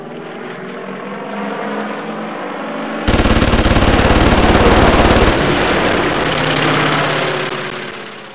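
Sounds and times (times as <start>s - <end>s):
weapon: 3.1s - 6.9s.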